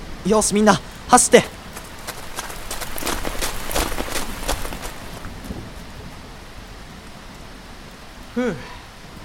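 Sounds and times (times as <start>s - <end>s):
speech: 0.2s - 1.6s
sudden rain shower falling: 0.4s - 9.2s.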